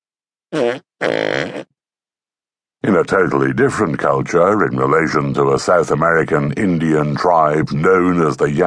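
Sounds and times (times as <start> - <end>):
loud farts: 0.5 - 1.7
speech: 3.1 - 8.6.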